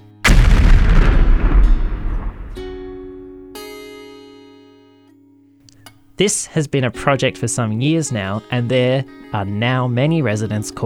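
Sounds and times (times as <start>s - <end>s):
explosion sound effect: 0.0s - 3.4s
speech: 6.2s - 10.8s.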